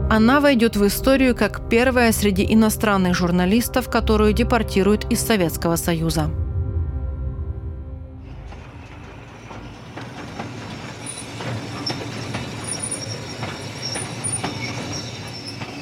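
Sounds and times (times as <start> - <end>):
speech: 0.1 - 6.5
train wheels rumbling over the rails at a small station near Kharkiv: 8.2 - 15.8
sharp metallic squeals and clicks of train wheels: 8.8 - 15.8.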